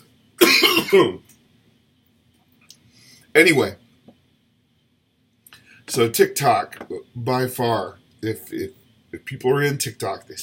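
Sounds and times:
loud cough with throat clearing: 0.4s - 1.2s
speech: 0.5s - 1.3s, 3.4s - 3.8s, 5.9s - 10.4s.

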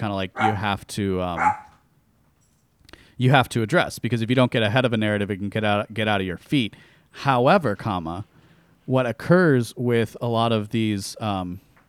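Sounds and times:
speech: 0.0s - 1.7s, 3.2s - 8.3s, 8.9s - 11.7s
dog barking: 0.4s - 0.7s, 1.4s - 1.8s.

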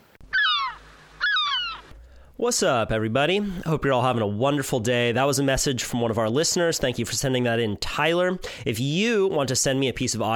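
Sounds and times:
birds chirping with raspy cries in a forest on a sunny day: 0.2s - 2.0s
speech: 2.4s - 10.3s.

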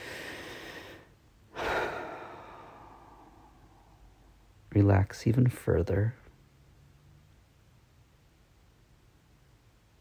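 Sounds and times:
long deep breath during a guided relaxation exercise: 0.0s - 4.3s
speech: 4.8s - 6.2s.

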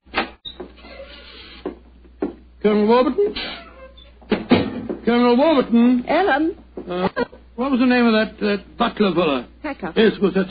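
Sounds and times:
door creaking open: 0.2s - 1.8s, 3.3s - 4.6s
speech: 2.6s - 3.6s, 5.1s - 10.4s
door knocks and thuds as it moves: 4.2s - 5.1s.

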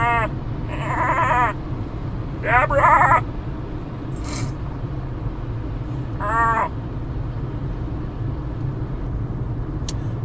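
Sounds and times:
person's voice imitating a goat bleating: 0.0s - 1.6s, 2.4s - 3.2s, 6.2s - 6.7s
low rumble: 0.0s - 10.2s.

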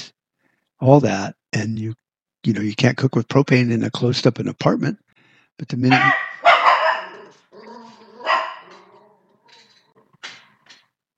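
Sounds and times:
speech: 0.8s - 5.0s, 5.6s - 6.2s
dog barking: 5.9s - 9.8s.

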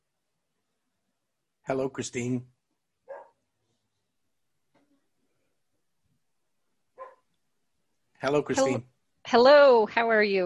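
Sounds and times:
speech: 1.7s - 2.6s, 8.2s - 10.4s
female dog barking: 3.0s - 3.4s, 7.0s - 7.3s.

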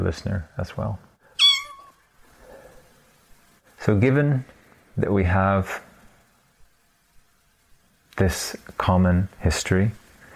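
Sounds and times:
speech: 0.0s - 1.1s, 3.9s - 5.9s, 8.2s - 10.0s
cat meowing: 1.4s - 2.0s.

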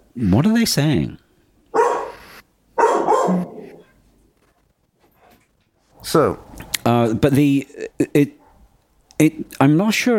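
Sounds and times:
speech: 0.2s - 1.2s, 6.1s - 8.4s, 9.2s - 10.1s
dog barking: 1.8s - 2.2s, 2.8s - 4.0s.

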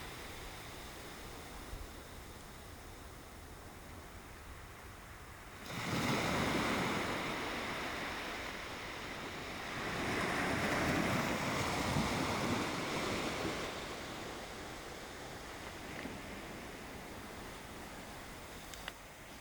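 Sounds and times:
low steady wash of calm sea at a beach: 0.0s - 19.4s
soft waves breaking and hissing up the shore on a calm sea beach: 0.0s - 19.4s.

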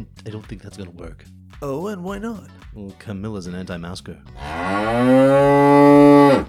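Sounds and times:
speech: 0.0s - 5.6s
cow mooing: 4.4s - 6.4s.

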